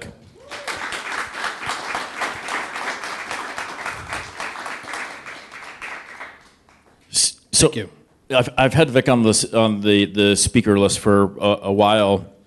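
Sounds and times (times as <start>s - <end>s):
room full of people applauding: 0.4s - 7.0s
speech: 7.6s - 12.3s.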